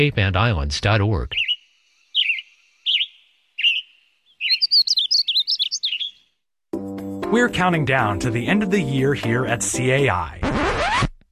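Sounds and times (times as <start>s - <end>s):
speech: 0.0s - 1.5s, 7.3s - 10.6s
bird singing whistled phrases and warbling: 1.3s - 6.4s.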